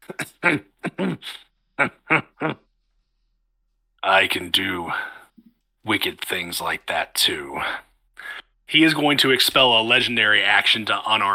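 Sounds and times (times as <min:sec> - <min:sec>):
person performing pained coughs of a wounded character: 0:00.0 - 0:02.7
throat-clearing grunts: 0:00.0 - 0:02.7
speech: 0:00.1 - 0:01.9, 0:06.0 - 0:07.8, 0:08.7 - 0:11.3.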